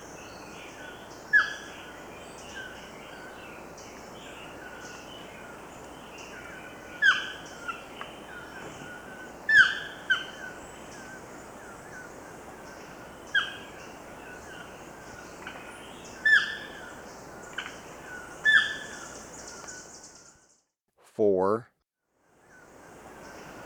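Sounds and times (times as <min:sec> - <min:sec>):
Chestnut-tipped toucanet calling with nasal downslurred croaks in Ecuador: 0:01.3 - 0:01.7, 0:06.5 - 0:11.2, 0:13.3 - 0:14.6, 0:15.4 - 0:19.9
speech: 0:21.2 - 0:21.7.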